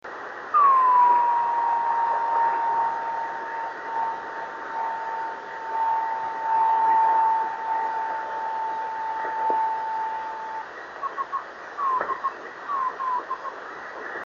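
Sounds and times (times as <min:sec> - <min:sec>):
drift net radio beacon signal on 26790 kHz: 0:00.6 - 0:13.6.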